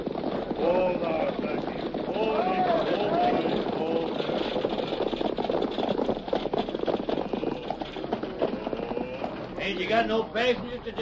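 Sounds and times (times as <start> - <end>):
horse hooves clip-clopping pulling a stagecoach: 0.0 - 11.0
stagecoach wheels and harness clattering and rattling: 0.0 - 11.0
speech: 9.7 - 11.0.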